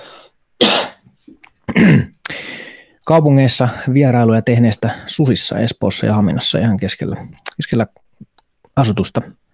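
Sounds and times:
person coughing harshly: 0:00.6 - 0:01.0, 0:01.7 - 0:02.2
throat clearing: 0:01.6 - 0:02.2
speech: 0:03.1 - 0:08.0, 0:08.8 - 0:09.4.

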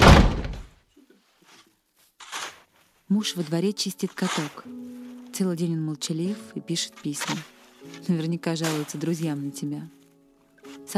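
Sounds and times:
door slamming shut: 0:00.0 - 0:00.8
scraping rustle: 0:01.0 - 0:05.6, 0:06.3 - 0:10.9
speech: 0:03.1 - 0:10.0.

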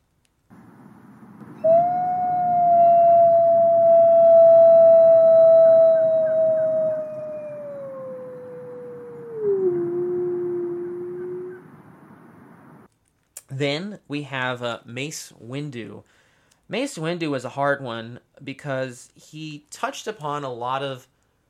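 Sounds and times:
wolf howling: 0:01.6 - 0:11.8
speech: 0:14.2 - 0:21.1.

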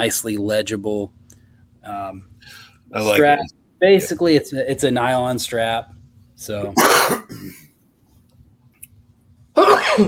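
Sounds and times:
speech: 0:00.0 - 0:01.2, 0:01.8 - 0:07.6
faint hum: 0:00.0 - 0:10.0
sneeze: 0:06.8 - 0:07.6, 0:09.6 - 0:10.0.

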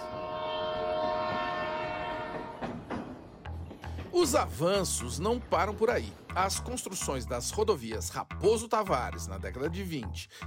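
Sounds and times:
train horn blaring: 0:00.0 - 0:03.2
rumbling rail noise: 0:00.0 - 0:07.5
speech: 0:04.2 - 0:10.4.

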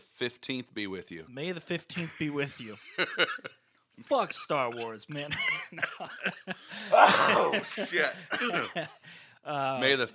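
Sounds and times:
speech: 0:00.2 - 0:10.1
laughter: 0:02.0 - 0:03.6, 0:04.8 - 0:09.1
rasping strained vocal sound: 0:06.8 - 0:08.4
short breathy coughs: 0:06.9 - 0:08.9.

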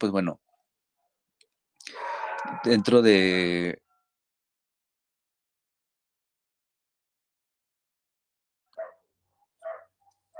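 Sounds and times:
speech: 0:00.0 - 0:00.5, 0:02.4 - 0:03.8
dog barking: 0:08.8 - 0:09.0, 0:09.6 - 0:10.3.

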